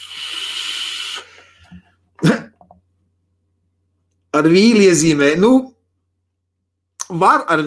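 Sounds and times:
vape mesh coil firing with sizzling hiss: 0.0 - 1.5
speech: 4.4 - 5.7, 7.2 - 7.6.

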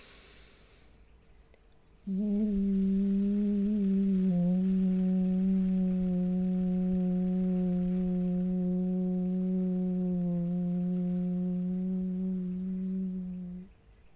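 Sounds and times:
deep breath in: 0.0 - 1.0
person humming a deep voiced woo on a long exhale: 2.0 - 13.8.

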